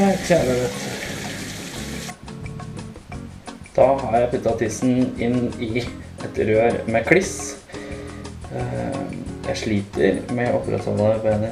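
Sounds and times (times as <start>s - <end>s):
speech: 0.0s - 0.9s, 3.8s - 7.6s, 8.5s - 11.5s
37-degree water running steadily from a tap: 0.0s - 2.2s.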